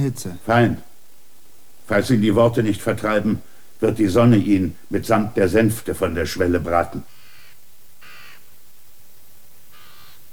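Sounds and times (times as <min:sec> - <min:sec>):
speech: 0:00.0 - 0:00.9, 0:01.9 - 0:07.2
constant loud hiss: 0:00.0 - 0:10.3
birds calling loudly on a hot day with crow-like caws: 0:07.1 - 0:08.5, 0:09.7 - 0:10.2.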